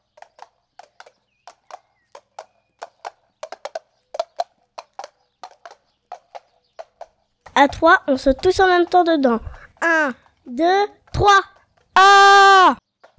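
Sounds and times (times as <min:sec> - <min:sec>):
hooves of a horse pulling a cart clip-clopping: 0:00.0 - 0:09.9
speech: 0:07.6 - 0:12.8.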